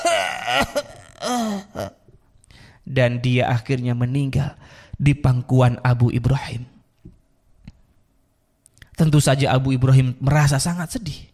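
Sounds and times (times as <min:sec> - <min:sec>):
person imitating an old man coughing and choking: 0:00.0 - 0:02.1
speech: 0:00.4 - 0:02.0, 0:02.9 - 0:06.7, 0:09.0 - 0:11.3.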